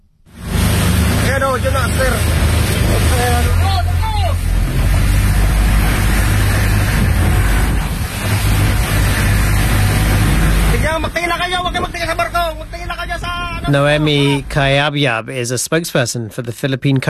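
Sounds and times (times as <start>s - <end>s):
Coast Guard boat engine roar approaching a burning ferry: 0.0s - 15.0s
strong winds off the Philippines: 0.3s - 14.6s
voices calling out: 1.3s - 14.9s
speech: 1.4s - 3.9s, 11.0s - 17.0s.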